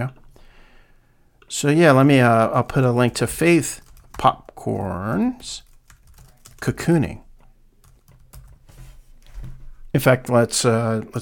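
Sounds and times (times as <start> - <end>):
speech: 0.0 - 0.2, 1.5 - 5.7, 6.6 - 7.2, 10.0 - 11.1
typing on a computer keyboard: 3.8 - 4.3, 5.4 - 6.8, 7.8 - 8.7.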